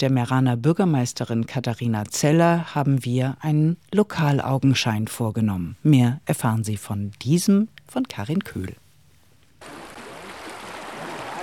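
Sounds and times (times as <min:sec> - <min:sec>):
speech: 0:00.0 - 0:08.8
water babbling in a stream: 0:09.6 - 0:11.4.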